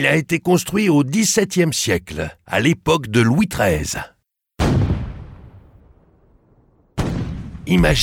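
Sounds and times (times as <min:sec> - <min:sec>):
speech: 0:00.0 - 0:04.1, 0:07.7 - 0:08.0
cannon shot from a defensive harbour tower in Toulon France: 0:04.6 - 0:08.0.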